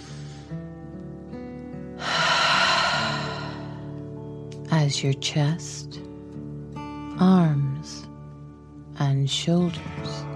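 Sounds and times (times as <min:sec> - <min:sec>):
deep breath in and out in a calming breathing exercise: 0:02.0 - 0:03.9
speech: 0:04.9 - 0:06.1, 0:07.2 - 0:08.0, 0:09.1 - 0:10.3.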